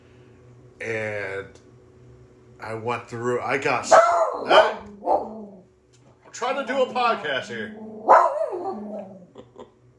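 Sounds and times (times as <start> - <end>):
speech: 0.8 - 1.6, 2.6 - 4.9, 6.4 - 7.8
dog barking indoors: 3.8 - 5.5, 8.0 - 9.1.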